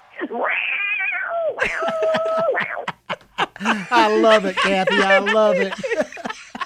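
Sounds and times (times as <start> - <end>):
cat meowing: 0.2 - 1.6
speech: 0.3 - 0.8, 3.6 - 5.9
laughter: 1.6 - 6.6.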